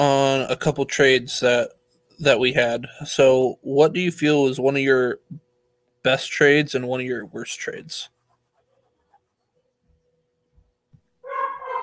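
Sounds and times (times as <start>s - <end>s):
speech: 0.0s - 5.4s, 6.0s - 8.1s
dog barking: 11.2s - 11.8s.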